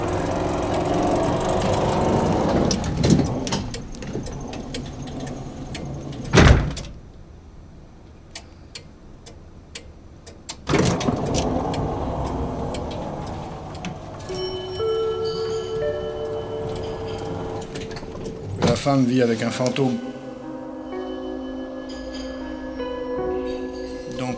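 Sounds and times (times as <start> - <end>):
sharp clicks: 0.0 - 7.0, 8.3 - 18.8
car engine turning over and rumbling in a parking lot: 0.0 - 24.3
car door thudding shut in a parking lot: 3.0 - 7.0
speech: 18.9 - 20.1.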